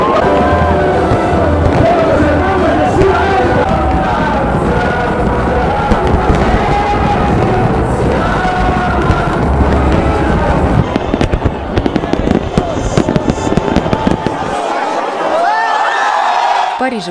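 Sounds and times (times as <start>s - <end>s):
fireworks crackling and popping over a beach: 0.0s - 15.2s
large crowd roaring on a beach: 0.0s - 17.0s
rising firework whistles: 2.7s - 14.8s.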